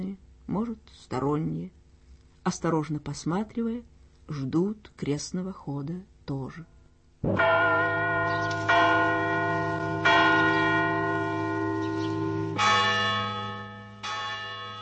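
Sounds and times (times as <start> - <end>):
speech: 0.0 - 1.8, 2.4 - 7.9
tinny church bell tolling: 7.2 - 14.7.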